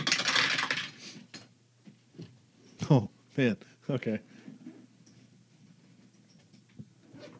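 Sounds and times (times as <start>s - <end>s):
dice tumbling across a hard table: 0.0s - 1.0s
speech: 2.9s - 4.3s.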